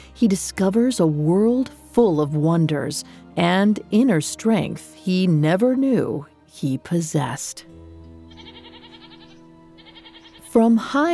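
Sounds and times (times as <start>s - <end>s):
speech: 0.2s - 7.8s, 10.5s - 11.1s
goats bleating while being herded in a pasture: 8.3s - 10.5s.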